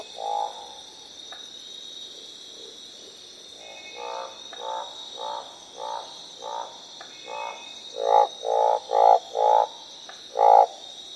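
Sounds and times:
orange thighed treefrog croaks: 0.0 - 1.4, 3.6 - 11.0
steady high hiss: 0.0 - 11.1.

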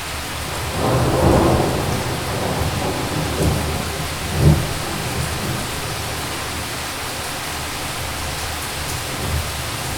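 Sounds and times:
heavy rain: 0.0 - 9.9
mountain thunder rolling: 0.5 - 6.9.

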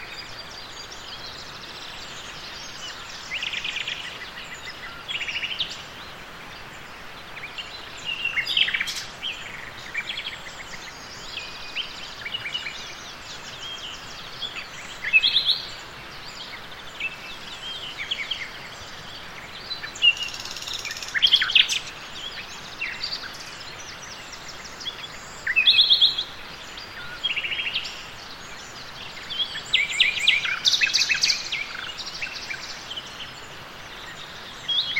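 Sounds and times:
nightingales singing: 0.0 - 34.9.

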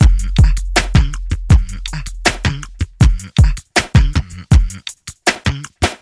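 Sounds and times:
kick drum tuned to F sharp: 0.0 - 4.8
80 bpm drum beat in F sharp: 0.0 - 6.0.

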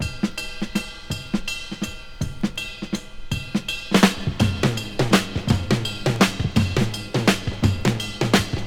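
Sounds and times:
breakbeat drum loop in G sharp: 0.0 - 8.6.

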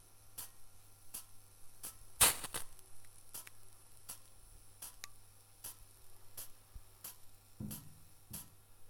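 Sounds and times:
cold water drops from a small kettle on a hot cooking machine: 1.2 - 8.6.

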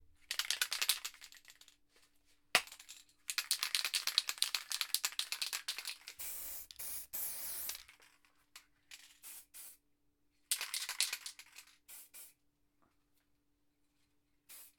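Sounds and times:
spray paint can shaking: 0.3 - 1.7, 2.6 - 8.1, 10.5 - 12.3, 14.5 - 14.7
spray paint can spraying: 5.2 - 7.8, 14.5 - 14.7.

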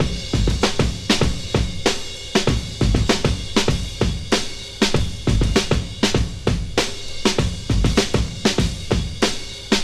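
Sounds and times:
fresh breakbeat at 98 bpm in A sharp key: 0.0 - 9.8.

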